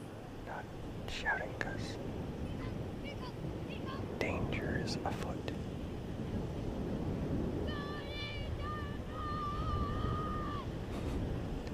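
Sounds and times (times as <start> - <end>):
steady ocean waves washing onto a beach: 0.0 - 11.7
speech: 4.5 - 5.5
faint high tonal cry: 7.7 - 10.7.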